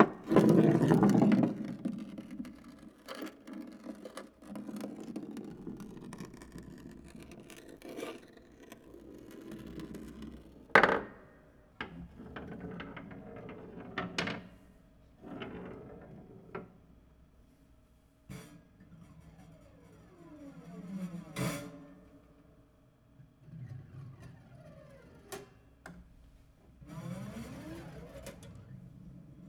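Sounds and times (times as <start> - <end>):
marbles rolling sparsely on a piano: 0.0 - 11.2, 11.8 - 14.6, 15.2 - 16.7.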